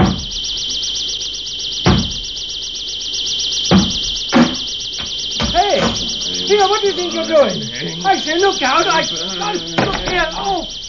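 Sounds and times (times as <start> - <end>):
shrill warbling alarm tone: 0.2 - 10.8
someone forcefully banging on a door: 1.8 - 2.3, 3.7 - 6.3, 9.8 - 10.8
laughter: 5.4 - 10.8
speech: 6.8 - 10.8.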